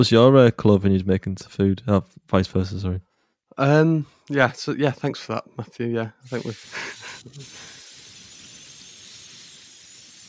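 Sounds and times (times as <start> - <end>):
speech: 0.0 - 7.7
cat breathy windy hissing: 6.3 - 10.2.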